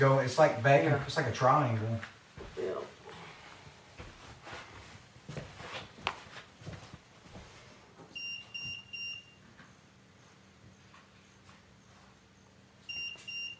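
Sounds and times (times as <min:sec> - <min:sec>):
speech: 0:00.0 - 0:02.2
shuffling and bumping in a noisy room: 0:03.4 - 0:07.7
electronic meter beeping: 0:08.2 - 0:09.4, 0:12.8 - 0:13.5.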